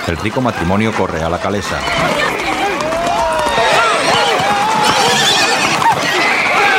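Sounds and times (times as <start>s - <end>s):
speech: 0.1s - 2.4s
hooves clattering in a town square: 0.5s - 6.7s
black Andalusian horse neighing in a town square: 1.6s - 6.7s.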